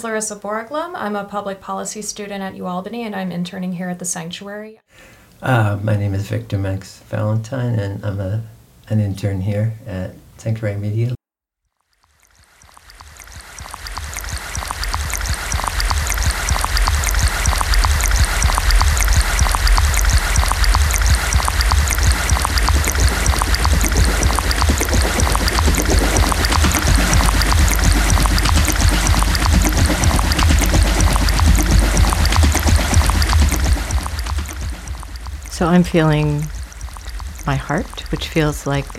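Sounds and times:
speech: 0:00.0 - 0:11.2, 0:35.6 - 0:36.6, 0:37.5 - 0:38.9
water flowing from a spring: 0:11.8 - 0:38.9.

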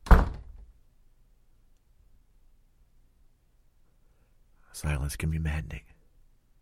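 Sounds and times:
heavy door slamming shut: 0:00.0 - 0:00.7
speech: 0:04.8 - 0:06.0.

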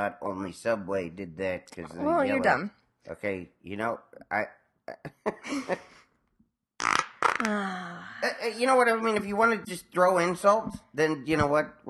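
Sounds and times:
speech: 0:00.0 - 0:05.9, 0:07.4 - 0:11.8
farts: 0:06.8 - 0:07.6.

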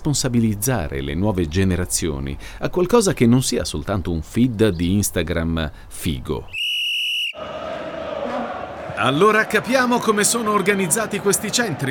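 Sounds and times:
speech: 0:00.0 - 0:06.6, 0:09.0 - 0:11.8
long shrill referee's kick-off whistle blast: 0:06.5 - 0:07.4
crowd roaring and shouting: 0:07.4 - 0:11.8.

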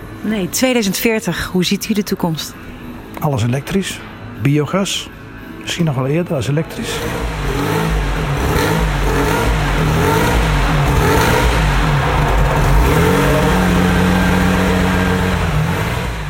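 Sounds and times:
speech: 0:00.2 - 0:07.9
car engine revving: 0:06.6 - 0:16.2.

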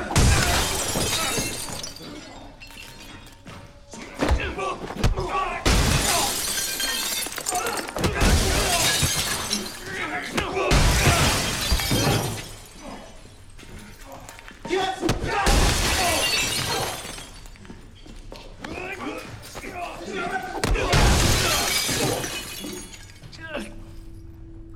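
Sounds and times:
large glass display cases shattering: 0:00.2 - 0:03.8, 0:05.6 - 0:18.1, 0:19.0 - 0:24.4
falling glass shards: 0:00.4 - 0:03.7, 0:05.7 - 0:10.2, 0:10.9 - 0:14.4, 0:15.6 - 0:18.0, 0:20.9 - 0:24.2.

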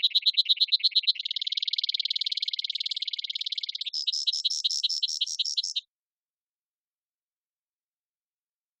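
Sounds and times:
Brewer's sparrow Spizella breweri singing a trilled song in sagebrush: 0:00.0 - 0:05.9.

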